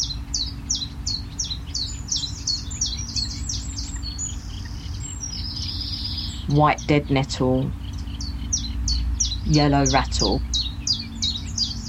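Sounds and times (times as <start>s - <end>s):
constant low rumble: 0.0s - 11.8s
warbler singing: 0.0s - 11.8s
speech: 6.5s - 7.8s, 9.5s - 10.5s.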